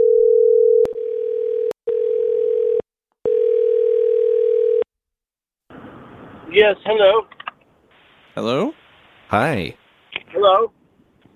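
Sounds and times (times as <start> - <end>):
telephone dial tone while a number is being called: 0.0 - 4.8
speech: 6.6 - 7.4, 8.4 - 9.8, 10.4 - 10.8.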